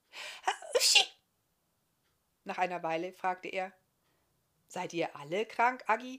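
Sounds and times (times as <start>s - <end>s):
person sneezing forcefully: 0.3s - 1.2s
speech: 2.5s - 3.8s, 4.7s - 6.1s.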